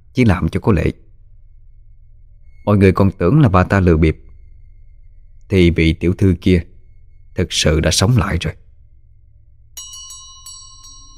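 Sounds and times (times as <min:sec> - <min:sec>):
low steady hum: 0:00.0 - 0:11.1
speech: 0:00.2 - 0:01.0, 0:02.6 - 0:04.2, 0:05.5 - 0:06.7, 0:07.4 - 0:08.6
bronze bell jingling: 0:09.8 - 0:11.1.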